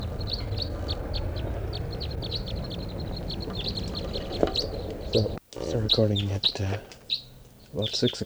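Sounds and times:
low rumble: 0.0 - 5.4
wild crossbill flock calling in a tall lodgepole pine: 0.0 - 8.2
speech: 6.0 - 7.0, 7.7 - 8.2.

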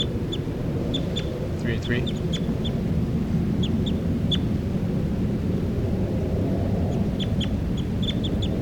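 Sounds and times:
recorded bird calling with short high chirps: 0.0 - 2.8, 3.6 - 4.5, 6.9 - 8.6
steady low rumbling noise: 0.0 - 8.6
speech: 1.6 - 2.8.

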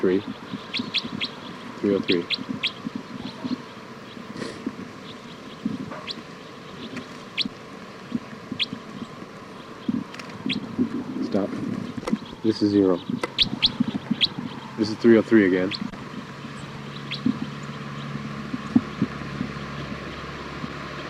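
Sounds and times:
speech: 0.0 - 2.9, 12.5 - 13.3, 14.8 - 15.9
bird chirps: 0.0 - 21.0
steady low hum: 0.0 - 21.0.

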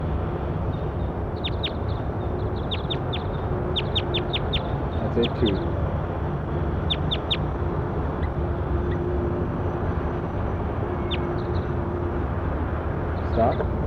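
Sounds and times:
steady rumbling outdoor noise: 0.0 - 13.8
bird giving sharp high calls: 1.3 - 5.7, 6.8 - 7.5
speech: 5.2 - 5.8.

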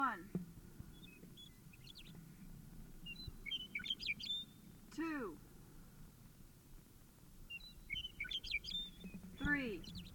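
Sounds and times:
bird chirping: 0.9 - 2.3, 3.0 - 4.8, 7.5 - 10.1.

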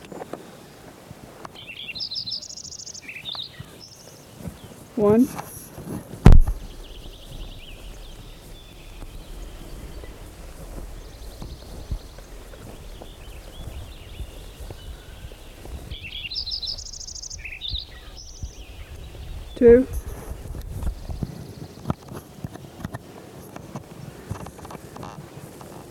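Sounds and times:
low noise: 0.0 - 25.8
Lincoln's sparrow song: 1.5 - 5.7, 6.4 - 22.9
faint scattered chirps: 1.6 - 4.8, 6.5 - 22.9
speech: 5.0 - 5.5.

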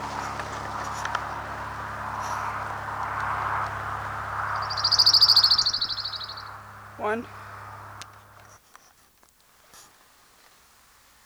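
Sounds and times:
faint high chirps: 0.0 - 8.5
low hum: 0.0 - 8.5
orange-crowned warbler song: 0.0 - 8.5
speech: 7.0 - 7.4.

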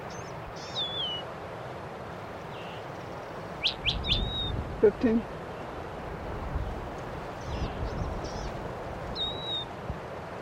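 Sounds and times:
finches chirping: 0.0 - 1.2, 2.5 - 4.6, 7.4 - 9.7
hiss: 0.0 - 10.4
speech: 4.8 - 5.4.

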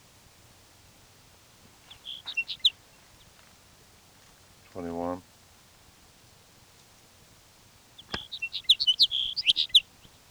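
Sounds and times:
bird calling in rapid high thin chirps: 1.8 - 3.4, 7.9 - 10.2.

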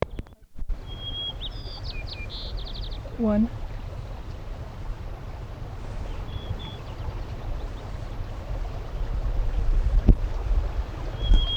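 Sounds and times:
white-crowned sparrow singing: 0.0 - 10.1, 10.7 - 11.5
speech: 3.2 - 3.6.

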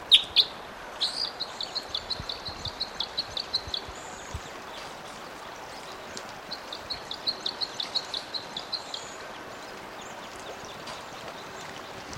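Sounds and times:
Type 5 Red Crossbill flight calls from a bird flying in: 0.0 - 12.0
steady background hiss: 0.0 - 12.1.

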